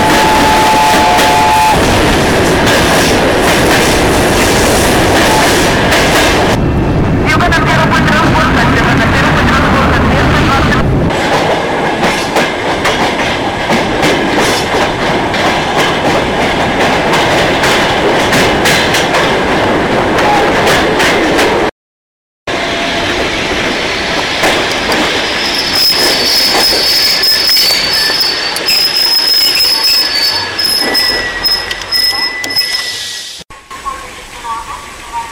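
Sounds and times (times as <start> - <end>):
railway wagons being shunted at night, rumbling and clattering: 0.0 - 21.7, 22.5 - 33.0
sustained high-pitched screech: 25.2 - 33.4
metallic railway wagon wheel squeals: 25.3 - 33.4.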